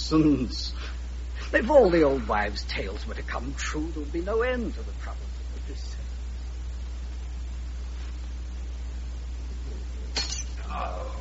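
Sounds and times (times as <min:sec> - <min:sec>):
faint hiss: 0:00.0 - 0:11.2
steady low hum: 0:00.0 - 0:11.2
speech: 0:00.1 - 0:05.9
wine glass dropping and shattering: 0:10.1 - 0:10.6
tinkling wine glass shards: 0:10.2 - 0:10.6.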